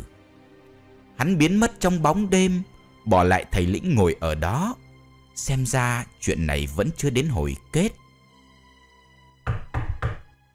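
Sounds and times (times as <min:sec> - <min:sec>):
speech: 0:01.2 - 0:04.8, 0:05.4 - 0:08.0
knocking on the door of a large house: 0:09.4 - 0:10.3.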